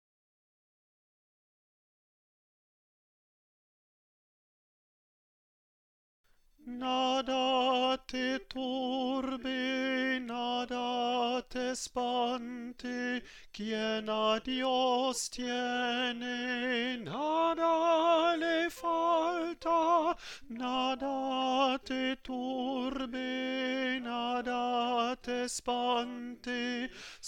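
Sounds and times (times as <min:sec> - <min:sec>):
alto voice singing a chant: 0:06.6 - 0:27.2.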